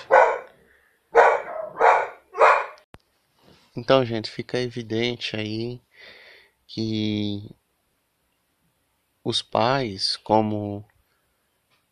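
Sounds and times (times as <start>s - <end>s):
dog barking: 0.0s - 2.8s
speech: 3.8s - 7.6s, 9.2s - 10.9s.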